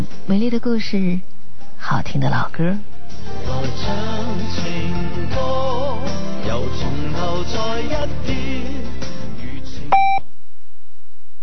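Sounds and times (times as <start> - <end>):
music: 0.0 - 10.2
speech: 0.3 - 4.7, 6.7 - 8.8
radio electronic time signal beep: 9.9 - 10.2.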